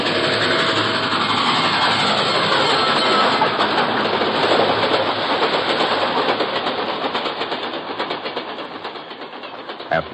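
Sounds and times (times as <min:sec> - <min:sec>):
train roaring past: 0:00.0 - 0:10.1
train wheels clattering on rails: 0:00.0 - 0:10.1.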